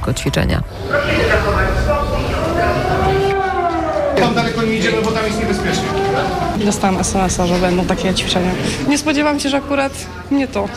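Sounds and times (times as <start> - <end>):
speech: 0.1 - 1.7, 4.2 - 10.7
civil defense sirens wailing across Wrocław during a drone-attack drill: 0.8 - 8.9.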